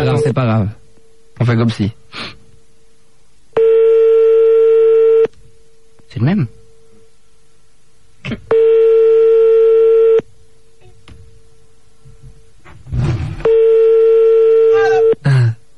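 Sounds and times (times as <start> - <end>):
speech: 0.0 - 0.8, 1.4 - 2.4, 6.1 - 6.6, 8.2 - 8.8
telephone ringback tone: 3.6 - 5.3, 8.5 - 10.2, 13.4 - 15.2.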